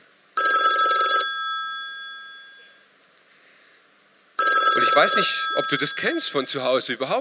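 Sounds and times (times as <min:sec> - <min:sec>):
loud telephone bell ringing: 0:00.4 - 0:02.9, 0:04.4 - 0:06.5
speech: 0:05.0 - 0:07.1.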